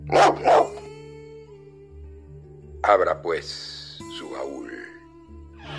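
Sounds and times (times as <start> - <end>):
dog barking: 0.0 - 0.8
speech: 2.9 - 5.0.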